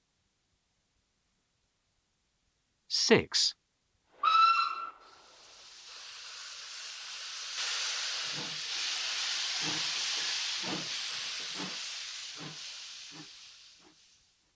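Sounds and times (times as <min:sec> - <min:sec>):
speech: 0:02.9 - 0:03.6
steam train shrill whistle: 0:04.2 - 0:05.1
broadband hiss of escaping steam: 0:05.0 - 0:14.5.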